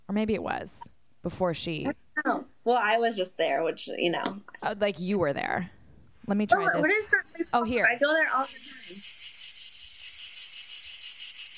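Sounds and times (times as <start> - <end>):
speech: 0.1 - 9.4
shrill cicada-like insect buzzing: 6.8 - 11.5.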